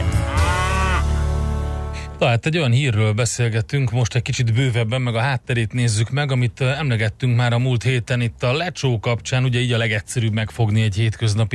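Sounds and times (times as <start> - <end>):
cow mooing: 0.0 - 1.1
speech: 2.2 - 11.5.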